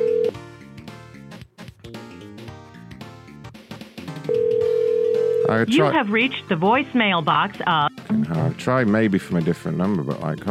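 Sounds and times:
steady electronic phone ringback tone: 0:00.0 - 0:00.4, 0:04.3 - 0:06.0
busy music: 0:00.0 - 0:10.5
speech: 0:05.5 - 0:10.5.

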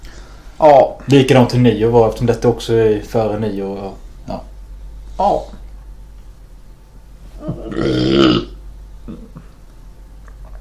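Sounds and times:
speech: 0:00.6 - 0:04.5, 0:05.2 - 0:05.6, 0:07.4 - 0:08.5
loud drawn-out deep rumbling burp: 0:07.5 - 0:09.4.

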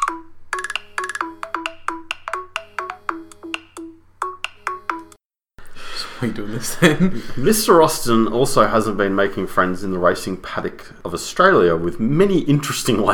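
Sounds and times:
mobile phone ringtone with plinking electronic notes: 0:00.0 - 0:05.2
speech: 0:06.2 - 0:13.1.

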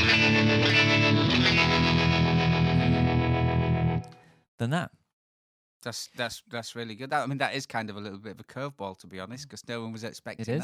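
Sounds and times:
loud heavily distorted 1950s rock and roll guitar riff in E: 0:00.0 - 0:04.1
speech: 0:04.6 - 0:05.0, 0:05.8 - 0:10.6.

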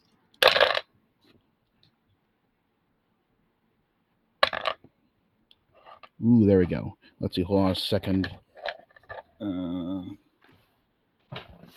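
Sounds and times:
dice being shaken and rolled: 0:00.4 - 0:00.9, 0:04.4 - 0:04.8
speech: 0:06.2 - 0:08.4, 0:09.4 - 0:10.2.

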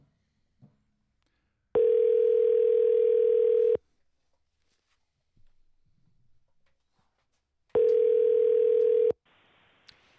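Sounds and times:
telephone tone while a call is being placed: 0:01.8 - 0:03.8, 0:07.8 - 0:09.2.

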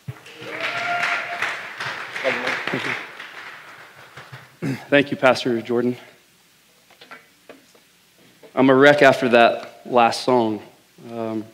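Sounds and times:
church audience applause: 0:00.0 - 0:04.9
person cheering: 0:00.1 - 0:04.8
speech: 0:04.7 - 0:06.1, 0:08.6 - 0:11.5.

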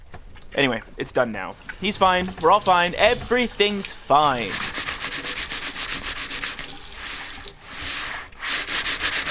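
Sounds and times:
speech: 0:00.6 - 0:04.7
smooth rush like running water: 0:01.6 - 0:08.2
brisk rhythmic scrubbing of a greasy pan: 0:01.6 - 0:09.2.

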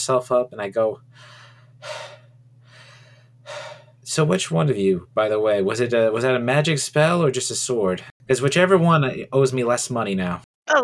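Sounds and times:
speech: 0:00.0 - 0:02.2, 0:03.5 - 0:10.8
low steady hum: 0:00.0 - 0:10.4
huge deep gasps for air after surfacing from underwater: 0:01.1 - 0:04.0.

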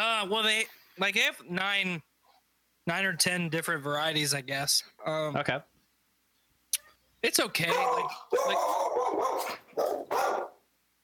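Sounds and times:
speech: 0:00.0 - 0:02.1, 0:02.9 - 0:05.7, 0:07.2 - 0:10.5
dog barking: 0:07.7 - 0:10.6.

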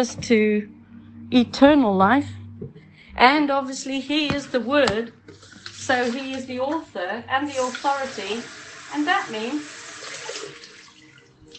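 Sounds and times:
speech: 0:00.0 - 0:09.8
water pouring: 0:05.3 - 0:06.5, 0:07.4 - 0:11.5.

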